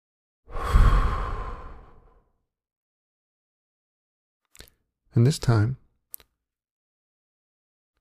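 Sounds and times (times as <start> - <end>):
deep breath during a guided relaxation exercise: 0.5 - 2.2
speech: 5.2 - 5.8.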